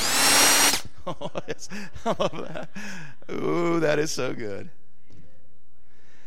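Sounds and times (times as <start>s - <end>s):
cordless power drill whirring: 0.0s - 0.8s
laughter: 0.9s - 3.0s
speech: 1.1s - 4.8s.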